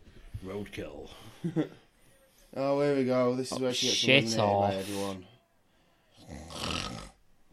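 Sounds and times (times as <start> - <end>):
speech: 0.4 - 1.9, 2.5 - 5.3
person snoring: 6.2 - 7.2.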